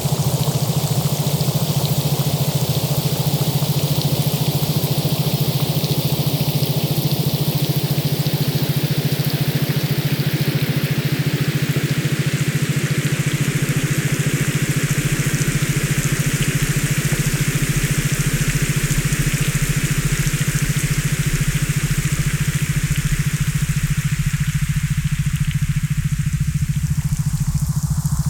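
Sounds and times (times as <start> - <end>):
steady rain hissing: 0.0 - 28.2
constant low hum: 20.3 - 28.2.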